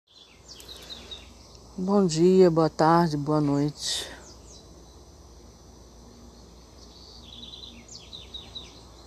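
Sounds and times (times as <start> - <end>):
birds chirping and singing outdoors: 0.1 - 5.2, 6.1 - 9.0
steady hum of open-air ambience: 0.1 - 9.0
speech: 1.8 - 4.2.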